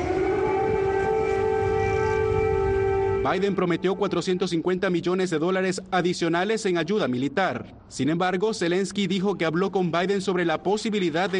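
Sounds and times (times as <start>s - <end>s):
air raid siren in the streets of Kyiv: 0.0s - 5.1s
speech: 3.2s - 11.3s.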